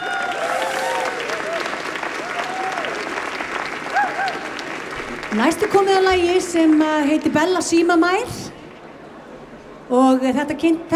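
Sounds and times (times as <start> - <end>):
people cheering: 0.0 - 4.7
audience applauding musicians: 0.0 - 7.3
speech: 5.3 - 8.4, 9.9 - 10.9.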